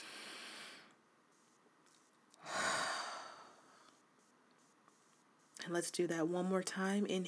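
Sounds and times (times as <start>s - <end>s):
person breathing in through the nose and out through the mouth: 0.0s - 1.0s, 2.4s - 4.0s
speech: 5.7s - 7.2s.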